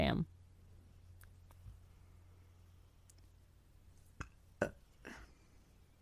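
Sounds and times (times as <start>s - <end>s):
low steady hum: 0.0s - 6.0s
small burp: 4.2s - 5.4s.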